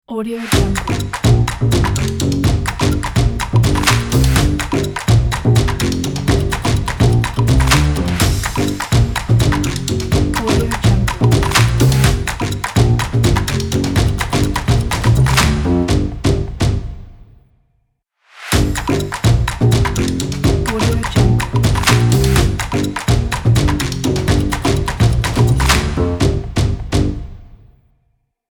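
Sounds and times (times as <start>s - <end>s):
claps: 0.5s - 15.7s, 18.5s - 26.0s
bass drums: 0.5s - 17.3s, 18.5s - 27.6s.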